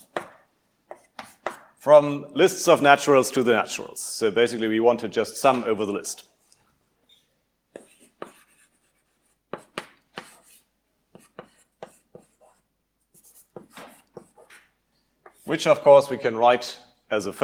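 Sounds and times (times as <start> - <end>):
writing on a board: 0.0 - 1.8, 7.1 - 15.5
speech: 1.8 - 6.3, 15.5 - 17.4.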